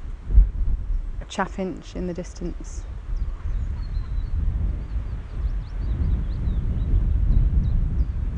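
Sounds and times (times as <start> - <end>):
heavy low rumble of wind: 0.0 - 8.3
speech: 1.3 - 2.9
chiffchaff song: 2.8 - 8.3.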